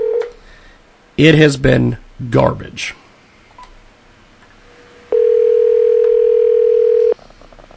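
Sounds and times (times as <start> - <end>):
steady telephone tone on a traditional telephone: 0.0 - 0.3, 5.1 - 7.2
speech: 1.2 - 3.0.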